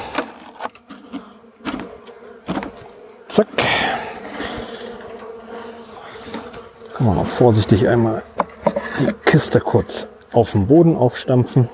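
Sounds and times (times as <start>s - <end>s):
many honeybees buzzing as bees are poured from a box: 0.0s - 11.7s
speech: 3.4s - 4.1s, 7.0s - 8.3s, 9.0s - 11.7s.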